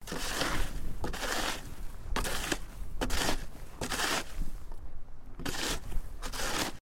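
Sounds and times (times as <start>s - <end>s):
shoveling snow with a shovel: 0.0s - 4.7s, 5.4s - 6.8s.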